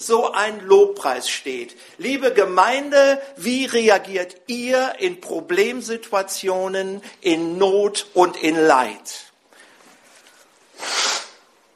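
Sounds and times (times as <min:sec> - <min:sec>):
speech: 0:00.0 - 0:09.3
nose blowing: 0:10.7 - 0:11.6.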